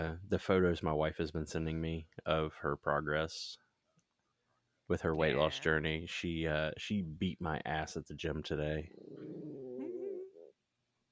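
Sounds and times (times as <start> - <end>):
speech: 0.0 - 3.6, 4.9 - 9.5
cat growling and yowling: 8.9 - 10.5.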